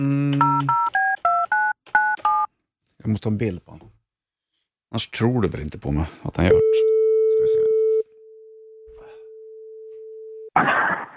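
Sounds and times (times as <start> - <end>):
speech: 0.0 - 0.8, 3.1 - 3.9, 4.9 - 7.6
telephone keypad tones: 0.4 - 2.5.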